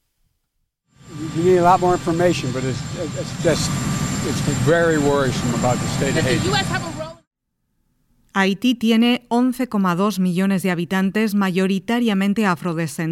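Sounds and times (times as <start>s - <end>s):
helicopter engine droning: 0.9s - 7.3s
speech: 1.4s - 7.0s, 8.4s - 13.1s.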